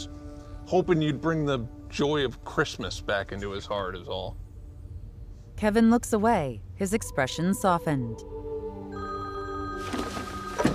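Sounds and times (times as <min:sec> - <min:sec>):
low hum: 0:00.0 - 0:10.6
speech: 0:00.7 - 0:04.4, 0:05.6 - 0:08.4
mobile phone ringing with an incoming call in a cockpit: 0:08.9 - 0:10.7.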